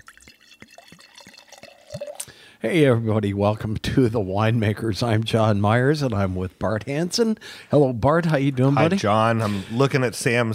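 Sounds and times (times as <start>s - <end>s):
wine glugging from a bottle into a glass: 0.0s - 2.3s
speech: 2.6s - 10.5s.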